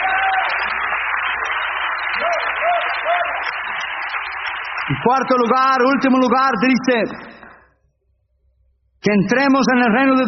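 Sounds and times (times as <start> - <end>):
church congregation applause during an evening service: 0.0 - 6.0
speech: 4.9 - 7.3, 9.0 - 10.2.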